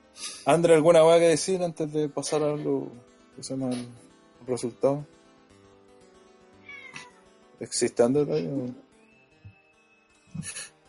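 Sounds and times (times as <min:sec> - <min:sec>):
speech: 0:00.2 - 0:05.2, 0:07.6 - 0:08.8, 0:10.4 - 0:10.7
cat meowing: 0:06.6 - 0:07.2.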